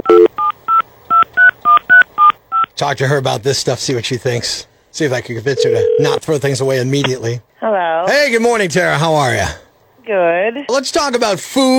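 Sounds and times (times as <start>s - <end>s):
telephone keypad dialing tones: 0.0s - 2.7s, 5.6s - 6.2s
speech: 2.8s - 11.7s.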